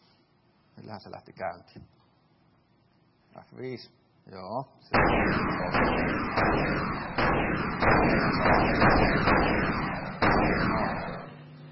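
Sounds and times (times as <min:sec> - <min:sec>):
speech: 0:00.8 - 0:02.0, 0:03.4 - 0:11.2
tank video game cannon fire: 0:04.9 - 0:11.4
tank video game explosions: 0:04.9 - 0:11.4
continuous rumbling din: 0:05.0 - 0:11.7.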